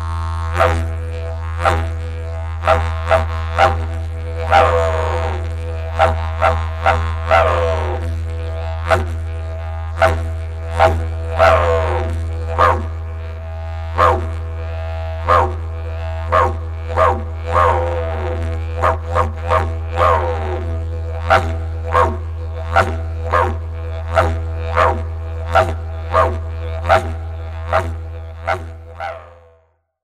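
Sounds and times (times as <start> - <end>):
steady low hum: 0.0 - 29.5
dingo barking: 2.6 - 3.9, 4.5 - 5.0, 6.0 - 7.8, 10.8 - 11.9, 12.5 - 12.9, 14.0 - 14.4, 15.3 - 15.6, 16.3 - 20.5, 21.2 - 29.2
domestic dog barking: 2.7 - 3.8, 12.6 - 12.9, 14.0 - 14.3, 15.3 - 15.6, 16.3 - 17.7, 18.8 - 20.1, 21.3 - 22.2, 25.6 - 27.1.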